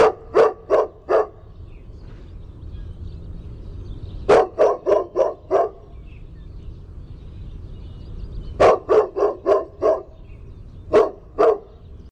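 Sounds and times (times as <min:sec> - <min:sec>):
dog barking: 0:00.0 - 0:01.5, 0:04.3 - 0:06.0, 0:08.6 - 0:10.2, 0:10.9 - 0:11.8.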